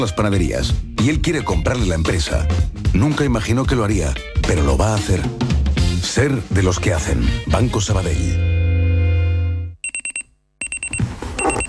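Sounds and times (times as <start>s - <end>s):
speech: 0.0s - 8.5s
electronic alarm clock beeping in high-pitched pulses: 9.8s - 11.6s.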